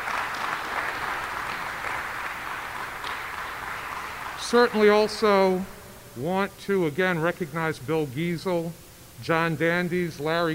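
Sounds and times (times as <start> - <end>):
audience applause: 0.0 - 5.6
speech: 4.5 - 10.5.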